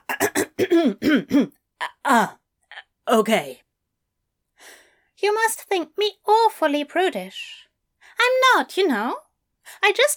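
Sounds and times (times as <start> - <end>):
person coughing with rough voiced hacks: 0.0 - 2.2
person clearing throat: 0.0 - 2.9
speech: 0.6 - 2.4, 3.1 - 3.6, 5.2 - 7.6, 8.2 - 10.1.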